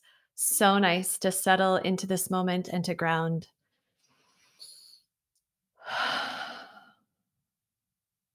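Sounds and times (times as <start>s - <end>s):
speech: 0.4s - 3.6s
deep breath in and out: 5.8s - 7.1s.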